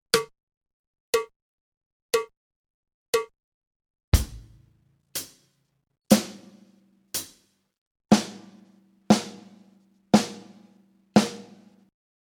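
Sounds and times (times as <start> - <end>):
drum kit practice exercise: 4.2 - 5.4, 6.1 - 7.5, 8.1 - 11.9.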